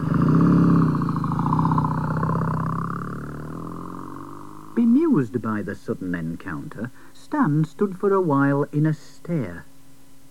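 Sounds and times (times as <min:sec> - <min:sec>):
motorbike engine revving and pulling away: 0:00.0 - 0:05.4
speech: 0:04.8 - 0:09.7.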